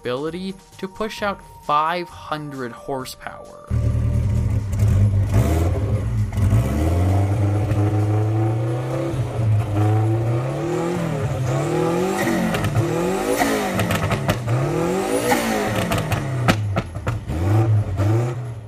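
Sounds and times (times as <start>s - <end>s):
speech: 0.0s - 3.8s
twin-turbocharged small-displacement V8 Lotus sports car engine revving: 3.7s - 18.6s.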